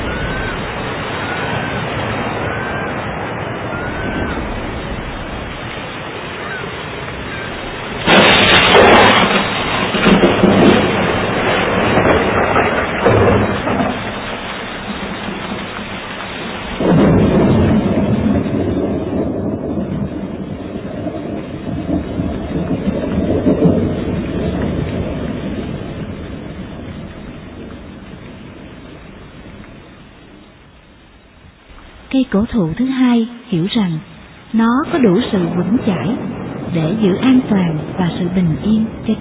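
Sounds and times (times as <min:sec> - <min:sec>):
faint bird chirps: 0:00.0 - 0:01.7
rain: 0:00.0 - 0:39.2
thunder rumbling in a violent thunderstorm: 0:00.0 - 0:39.2
wind: 0:00.0 - 0:39.2
speech: 0:32.4 - 0:39.2.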